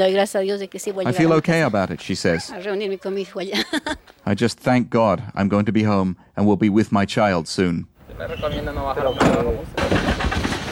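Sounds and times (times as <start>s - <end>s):
speech: 0.0s - 10.2s
truck engine cranking and starting: 8.0s - 10.6s.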